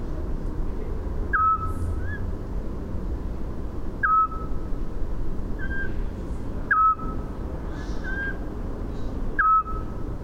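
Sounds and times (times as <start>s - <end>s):
constant low background rumble: 0.0s - 10.2s
Eurasian scops owl repeating a plain whistled note in Landshut: 1.3s - 2.2s, 4.0s - 4.6s, 5.6s - 5.9s, 6.7s - 7.2s, 7.8s - 8.4s, 9.4s - 10.0s
faint higher whistles: 1.4s - 2.2s, 4.0s - 4.5s, 6.7s - 7.2s, 9.4s - 9.9s.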